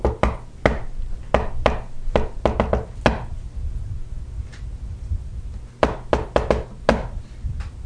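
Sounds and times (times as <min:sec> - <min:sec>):
sharp knocking on a wooden door: 0:00.0 - 0:03.3, 0:05.8 - 0:07.1
low steady hum: 0:00.0 - 0:07.8.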